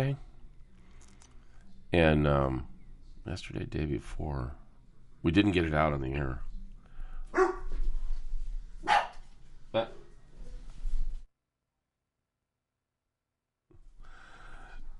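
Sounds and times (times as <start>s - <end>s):
speech: 0.0s - 0.3s, 1.9s - 4.6s, 5.2s - 6.5s
faint activity: 0.0s - 11.3s
dogs barking in a fight inside a house: 7.3s - 7.8s, 8.8s - 9.3s.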